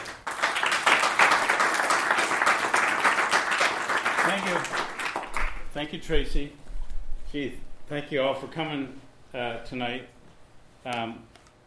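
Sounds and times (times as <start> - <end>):
audience applause at a bookshop event welcoming a speaker: 0.0 - 5.7
speech: 5.8 - 6.6, 7.3 - 10.2, 10.8 - 11.6.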